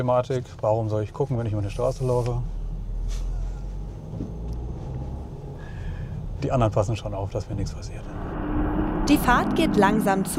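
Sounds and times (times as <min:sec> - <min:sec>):
speech: 0:00.0 - 0:03.3, 0:06.4 - 0:08.4, 0:09.0 - 0:10.3
car engine and road noise in city traffic: 0:00.0 - 0:10.3
faint higher whine: 0:07.2 - 0:10.3.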